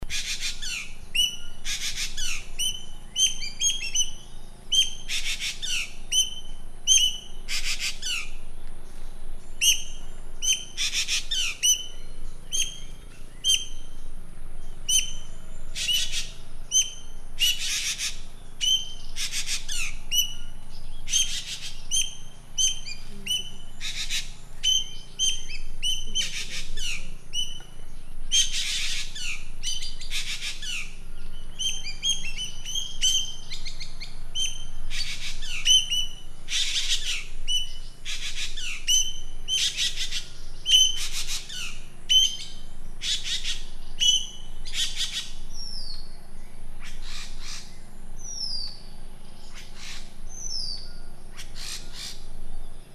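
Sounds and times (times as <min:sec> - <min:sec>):
Cissa chinensis bird calling: 0:00.0 - 0:52.9.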